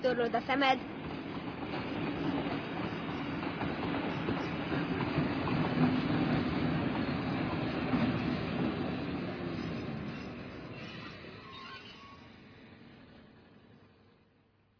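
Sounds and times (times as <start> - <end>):
fast railway train clattering along tracks: 0.0 - 14.1
train wheels squealing faintly: 9.3 - 12.5.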